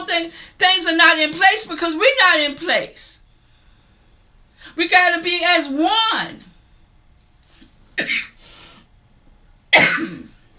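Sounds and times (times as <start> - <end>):
speech: 0.2 - 3.2, 4.6 - 6.5, 8.0 - 8.3
person coughing: 8.0 - 8.4, 9.7 - 10.4.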